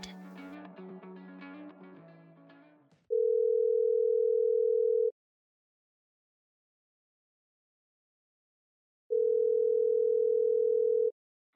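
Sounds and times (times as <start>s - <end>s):
music: 0.0s - 3.0s
electronic telephone ring tones: 3.1s - 5.1s, 9.1s - 11.1s.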